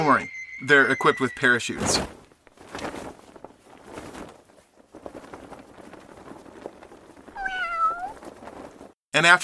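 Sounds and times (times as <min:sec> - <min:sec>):
speech: 0:00.0 - 0:02.8, 0:09.2 - 0:09.4
rustling and shuffling: 0:01.6 - 0:09.0
drawn-out cat meow: 0:07.4 - 0:08.2.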